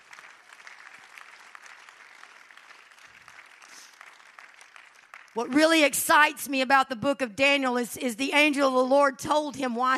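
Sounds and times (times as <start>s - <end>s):
audience clapping their hands: 0.0s - 5.4s
speech: 5.4s - 9.9s.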